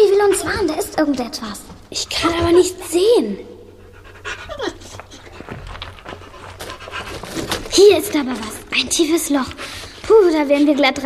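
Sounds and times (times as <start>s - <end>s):
dog panting rapidly: 0.0s - 10.7s
speech: 0.4s - 3.5s, 7.8s - 11.0s.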